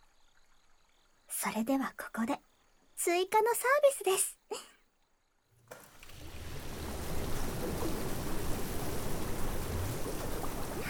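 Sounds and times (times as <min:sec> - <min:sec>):
speech: 0:01.4 - 0:04.7
hot bath water bubbling and churning from jets: 0:05.9 - 0:10.8.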